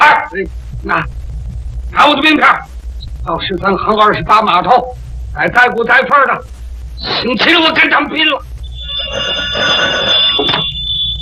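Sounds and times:
speech: 0.3s - 1.2s, 1.9s - 8.5s
telephone bell ringing with shrill sustained trill: 8.8s - 11.2s.

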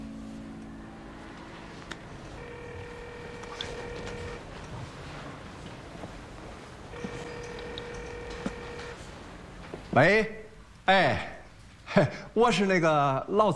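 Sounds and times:
telephone ringback tones of a dialed number: 0.0s - 4.8s, 6.9s - 9.2s
constant rumbling noise: 0.0s - 11.4s
speech: 10.0s - 11.3s, 11.9s - 13.5s.

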